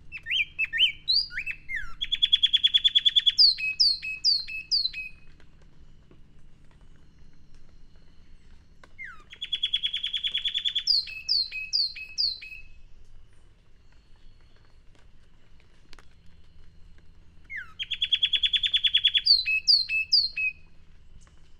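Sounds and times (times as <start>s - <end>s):
low background hum: 0.0s - 21.5s
Sharpe's wren Cinnycerthia olivascens singing buzzy trill and falling whistles: 0.1s - 5.3s, 9.0s - 12.9s, 17.5s - 20.8s.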